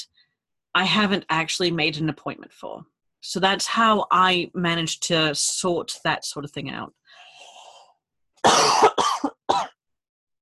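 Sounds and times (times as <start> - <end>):
speech: 0.8 - 7.2
harsh coughs: 8.4 - 9.8.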